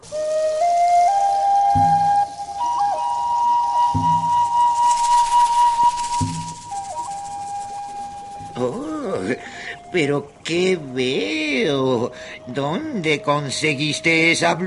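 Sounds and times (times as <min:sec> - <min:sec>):
breathy reed flute playing slow held notes: 0:00.0 - 0:14.6
steady hiss: 0:00.0 - 0:14.6
soft low thumps: 0:01.8 - 0:02.4, 0:03.9 - 0:04.6
speech: 0:10.0 - 0:14.6.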